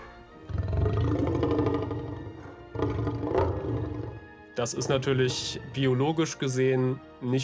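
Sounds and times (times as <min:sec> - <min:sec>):
film-style dinosaur roar mixing elephant and lion: 0:00.4 - 0:04.3
speech: 0:04.6 - 0:07.4.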